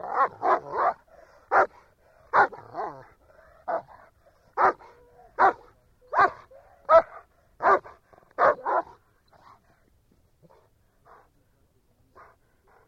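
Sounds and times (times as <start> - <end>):
German Shepherd dog barking: 0.0 - 9.6.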